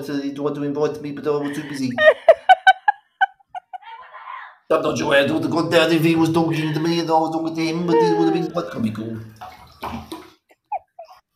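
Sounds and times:
speech: 0.0 - 2.4, 4.7 - 10.2
laughter: 1.3 - 4.0, 7.9 - 8.9
water splashing in a filled bathtub as a person bathes: 5.8 - 10.7
water dripping in a bathtub: 8.5 - 10.7.

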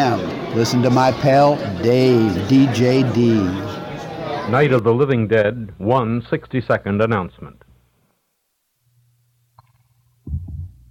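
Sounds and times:
speech: 0.1 - 3.8, 4.5 - 7.6
normal human heartbeat: 10.3 - 10.8.

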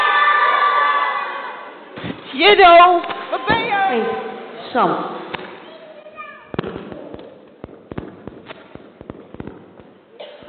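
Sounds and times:
audience of children shouting a name in unison: 0.0 - 1.8
speech: 2.4 - 3.2, 4.7 - 5.2.

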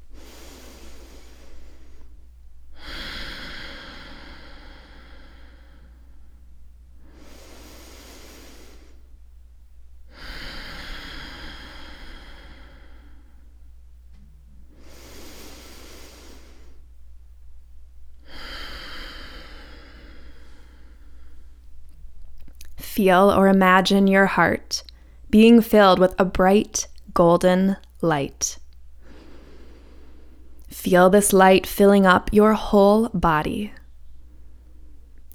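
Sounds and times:
slow deep breaths during a calming breathing exercise: 0.0 - 9.2, 10.1 - 13.6, 14.6 - 17.0, 18.2 - 21.8, 24.8 - 25.3, 28.9 - 30.7
speech: 23.0 - 28.6, 30.8 - 33.8.

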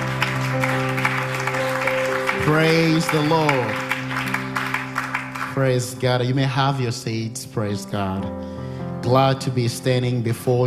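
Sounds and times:
congregation clapping hands at a church service: 0.0 - 6.3
speech: 2.5 - 3.8, 5.6 - 10.6.

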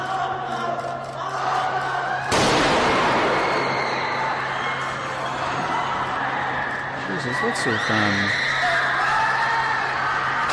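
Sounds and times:
crowd screaming and yelling in a staged attack video: 0.0 - 10.5
speech: 7.4 - 8.4.

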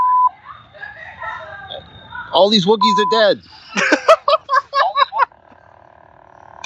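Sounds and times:
electronic beep prompting for voice input: 0.0 - 0.3, 1.7 - 3.3
speech: 2.3 - 3.8
laughter: 3.5 - 5.5.

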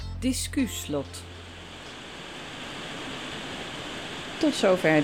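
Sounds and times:
speech: 0.2 - 1.4, 4.4 - 5.0
steady rain pouring: 1.2 - 5.0.

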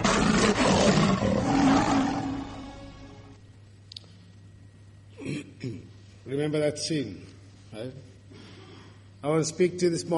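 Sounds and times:
lion roaring: 0.0 - 2.8
speech: 6.4 - 8.1, 9.2 - 10.1.

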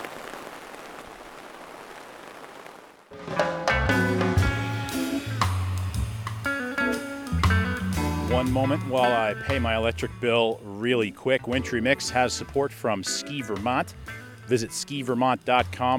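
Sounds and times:
rain falling: 0.0 - 3.2
loud music: 3.2 - 10.4
speech: 8.4 - 15.9.

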